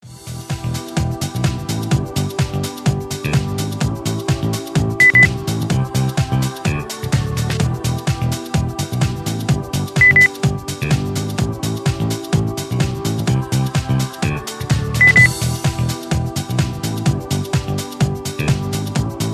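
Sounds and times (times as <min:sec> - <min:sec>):
percussion: 0:00.2 - 0:19.3
maglev train beep: 0:05.0 - 0:05.3, 0:10.0 - 0:10.3, 0:15.0 - 0:15.3.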